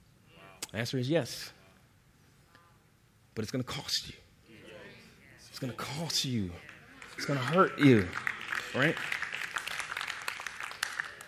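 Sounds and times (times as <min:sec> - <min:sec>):
speech: 0:00.7 - 0:01.6, 0:03.4 - 0:04.2, 0:05.6 - 0:09.2
audience clapping: 0:06.2 - 0:11.2.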